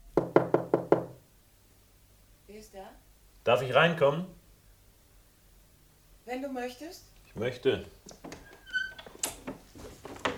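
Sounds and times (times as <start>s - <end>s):
knocking on a door: 0.1s - 1.2s
speech: 2.6s - 4.4s, 6.3s - 8.2s.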